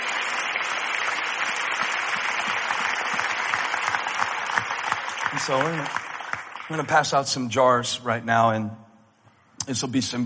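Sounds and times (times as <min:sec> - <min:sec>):
church audience clapping hands during a sermon: 0:00.0 - 0:07.4
speech: 0:05.4 - 0:06.0, 0:06.7 - 0:08.8, 0:09.6 - 0:10.2.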